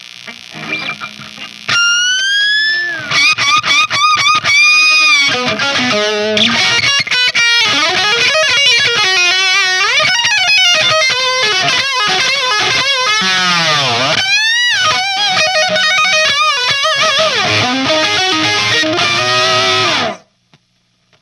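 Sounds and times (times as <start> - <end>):
guitar solo through a G12M 25 speaker in a metroamp: 0.2 - 20.3.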